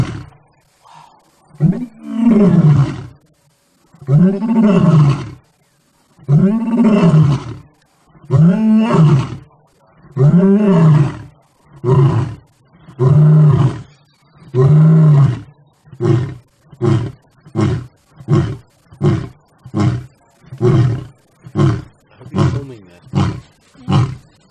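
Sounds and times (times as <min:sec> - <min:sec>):
lion roaring: 0:00.0 - 0:03.2, 0:04.0 - 0:05.4, 0:06.2 - 0:24.3
speech: 0:02.4 - 0:03.0, 0:04.2 - 0:05.2.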